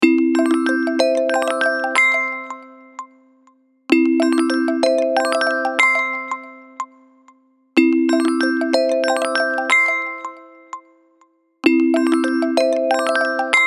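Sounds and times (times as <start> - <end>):
melodic alarm ringtone on Alcatel Pixi 3 phone: 0.2 - 3.0, 3.9 - 6.9, 7.8 - 10.8, 11.7 - 13.6.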